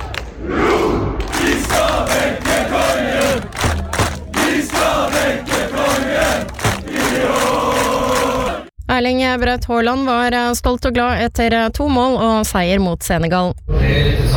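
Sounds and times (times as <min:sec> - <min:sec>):
large crowd of football fans roaring and chanting outdoors: 0:00.4 - 0:08.7
thumps beneath the crowd noise: 0:01.5 - 0:07.5
speech: 0:09.0 - 0:14.2.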